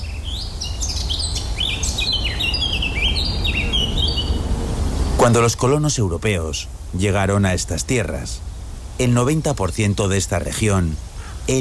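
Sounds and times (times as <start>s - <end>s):
birds singing in a New England forest: 0.0s - 11.5s
steady low rumble: 0.0s - 11.5s
speech: 5.2s - 11.5s.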